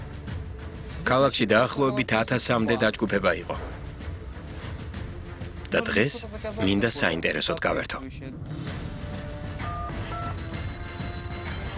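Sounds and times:
speech: 0:01.0 - 0:03.8, 0:05.7 - 0:08.8
telephone ringing with short electronic tones: 0:09.5 - 0:11.7.

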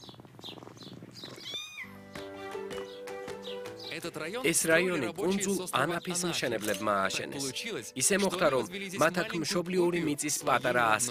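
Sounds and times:
cats meowing in narrow white-walled alleys: 0:00.5 - 0:02.3
speech: 0:04.0 - 0:11.0.

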